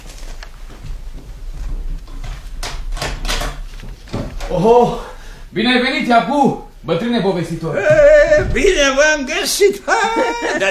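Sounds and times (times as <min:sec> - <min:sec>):
door being unlocked and opened: 0:02.6 - 0:04.5
speech: 0:04.5 - 0:10.7
laughter: 0:07.8 - 0:10.7.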